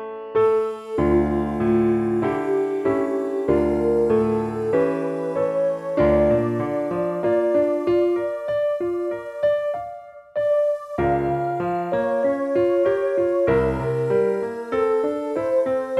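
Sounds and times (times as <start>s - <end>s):
high F piano note: 0.4s - 15.9s.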